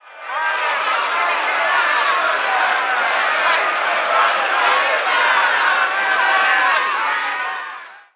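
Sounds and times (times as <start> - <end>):
medium angry crowd: 0.0 - 8.1.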